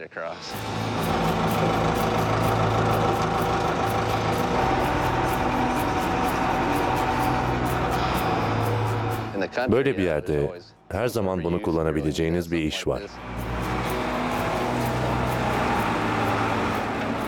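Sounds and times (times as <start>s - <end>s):
speech: 0.0s - 2.6s, 9.5s - 13.4s
old vehicle engine idling beside a river in Nome: 0.6s - 9.3s, 13.3s - 17.2s.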